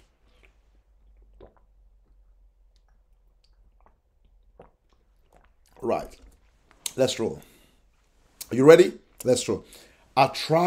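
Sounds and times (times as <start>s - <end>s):
person drinking water with wet gulps and swallows: 0.0s - 8.5s
speech: 5.8s - 6.3s, 7.0s - 7.5s, 8.5s - 10.6s.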